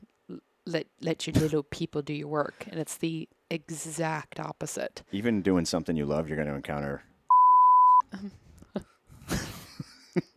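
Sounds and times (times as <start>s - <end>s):
speech: 0.7s - 7.1s, 8.1s - 8.9s
censor beep: 7.3s - 8.0s.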